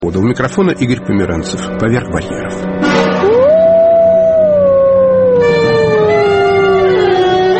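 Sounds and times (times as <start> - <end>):
speech: 0.0 - 3.2
wolves howling: 3.2 - 7.5.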